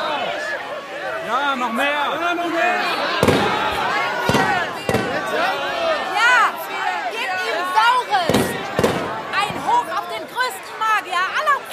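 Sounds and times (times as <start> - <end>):
demonstration crowd shouting and chanting: 0.0 - 11.7
speech: 1.3 - 3.8
firecrackers thrown by protesters exploding: 3.2 - 5.4, 8.3 - 9.8.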